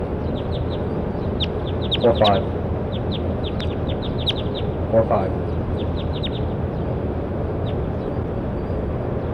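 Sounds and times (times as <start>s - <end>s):
loud steady broadband noise: 0.0s - 9.2s
short high bird chirps: 0.1s - 4.8s, 5.6s - 6.6s
speech: 2.0s - 2.6s, 4.9s - 5.4s.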